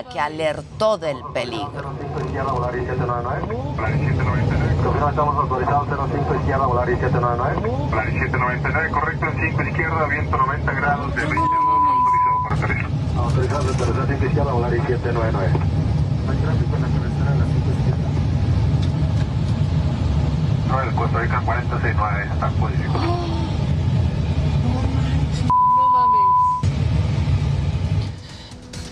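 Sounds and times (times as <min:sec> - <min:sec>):
speech: 0:00.0 - 0:11.7, 0:12.5 - 0:17.7, 0:20.7 - 0:23.4
airplane engines roaring during aborted landing climb: 0:00.0 - 0:28.9
electronic tone: 0:11.2 - 0:12.6.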